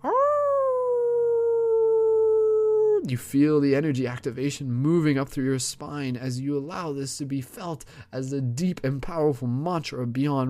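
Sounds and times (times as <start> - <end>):
wolf howling: 0.0 - 3.0
speech: 3.1 - 10.4.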